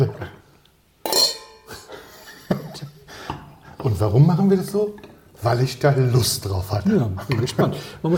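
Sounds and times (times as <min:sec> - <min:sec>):
wine glasses clinking in a toast: 0:01.0 - 0:03.5
speech: 0:03.8 - 0:08.1.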